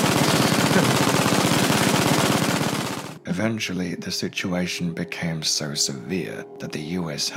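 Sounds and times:
MG-42 machine gun firing a sustained burst: 0.0s - 3.2s
speech: 3.4s - 7.3s.

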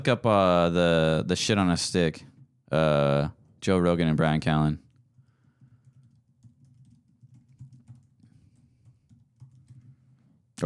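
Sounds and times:
speech: 0.0s - 4.8s
computer keyboard typing: 5.0s - 10.2s.

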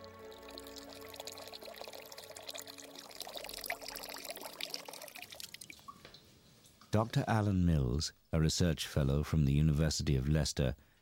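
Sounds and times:
water pouring into a water clock: 0.0s - 7.0s
speech: 7.0s - 10.9s.

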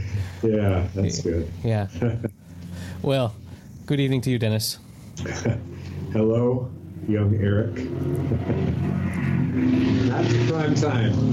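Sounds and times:
speech: 0.4s - 11.3s
man laughing: 1.9s - 2.4s, 5.2s - 5.8s, 8.3s - 8.9s
Harley motorcycle engine rumbling past: 5.5s - 11.3s.

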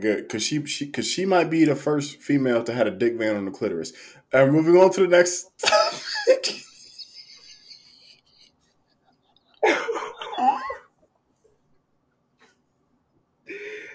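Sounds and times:
speech: 0.0s - 6.7s
laughter: 5.6s - 8.5s, 9.6s - 10.8s
raspy coughing: 9.6s - 10.8s.

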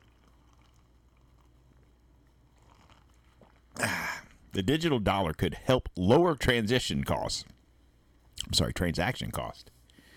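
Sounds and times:
liquid slurping and swallowing: 0.0s - 4.5s
person sipping a drink: 0.0s - 4.5s
speech: 4.6s - 7.5s, 8.4s - 9.7s.

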